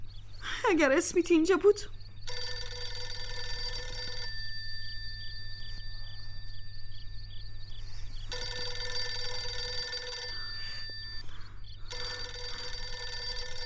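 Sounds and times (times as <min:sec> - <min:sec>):
speech: 0:00.6 - 0:02.0
telephone bell ringing: 0:02.3 - 0:07.2, 0:08.3 - 0:11.3, 0:11.9 - 0:13.6.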